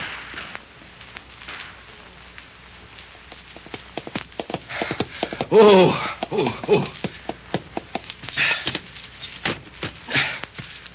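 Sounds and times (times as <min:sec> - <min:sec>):
steady rushing noise: 0:00.0 - 0:09.9
horse hooves galloping: 0:03.5 - 0:10.9
speech: 0:05.5 - 0:07.0.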